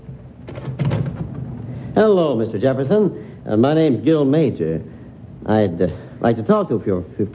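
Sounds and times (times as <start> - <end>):
wooden front door latch rattle: 0.4 - 1.5
speech: 2.0 - 7.3.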